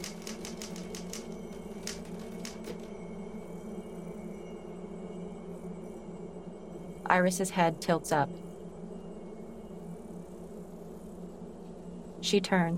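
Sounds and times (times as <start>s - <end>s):
typing on a typewriter at a desk in a study: 0.0s - 2.9s
steady low hum: 0.0s - 12.7s
speech: 7.1s - 8.5s, 12.3s - 12.7s.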